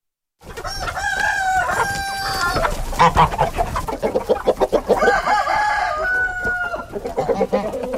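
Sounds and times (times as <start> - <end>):
flock of hens and chicks clucking on a smallholding in Sigulda municipality Latvia: 0.4 - 7.9
rooster crowing on a smallholding in Sigulda municipality Latvia: 0.6 - 3.2, 5.0 - 7.3.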